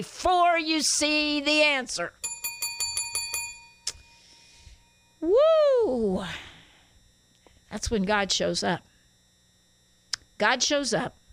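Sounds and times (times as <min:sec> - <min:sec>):
speech: 0:00.0 - 0:02.3, 0:05.2 - 0:06.5, 0:07.7 - 0:08.9, 0:10.4 - 0:11.2
bell ringing: 0:02.2 - 0:05.2.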